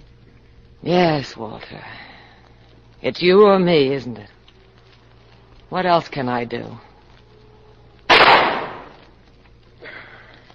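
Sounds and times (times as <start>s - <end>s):
speech: 0.8s - 2.1s, 3.0s - 4.4s, 5.7s - 6.9s
gunshot in a radio drama: 8.1s - 9.0s.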